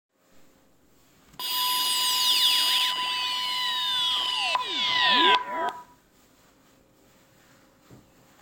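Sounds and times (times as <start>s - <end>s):
distorted sine wave: 1.4s - 6.0s.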